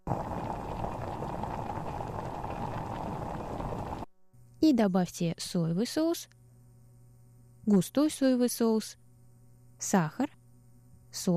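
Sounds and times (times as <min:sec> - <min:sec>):
rice wine and anise simmering in a pot: 0:00.0 - 0:04.1
speech: 0:04.6 - 0:06.4, 0:07.7 - 0:09.0, 0:09.8 - 0:10.4, 0:11.1 - 0:11.3.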